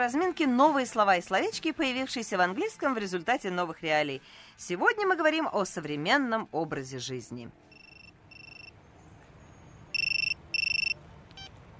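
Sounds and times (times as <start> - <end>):
speech: 0.0 - 7.7
mobile phone ringing in a pocket in the street: 7.7 - 8.7, 9.9 - 11.6
faint beep: 7.7 - 11.5.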